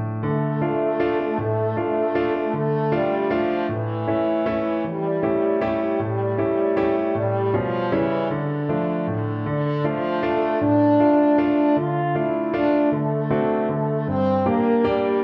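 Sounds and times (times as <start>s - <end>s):
french horn melody: 0.1s - 15.2s.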